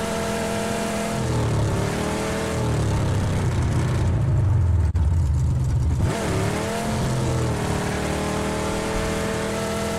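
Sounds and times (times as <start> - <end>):
Lamborghini sports car engine roaring in a video game: 0.0 - 9.9.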